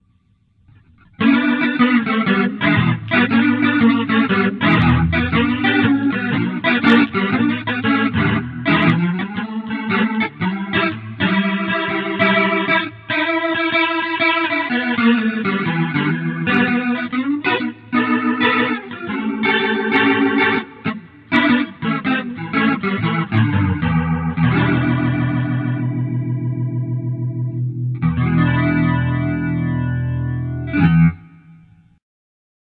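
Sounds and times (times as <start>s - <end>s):
crunch rotary guitar effect on a Boss GT-8: 0.7s - 31.8s.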